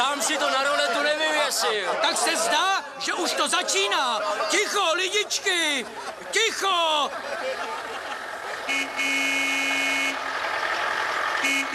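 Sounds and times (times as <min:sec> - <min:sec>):
laughter: 0:00.0 - 0:08.9
noisy street-like background: 0:00.0 - 0:11.7
speech: 0:01.6 - 0:08.1
car horn honking as it pulls out in front of house: 0:08.7 - 0:10.3, 0:11.4 - 0:11.7.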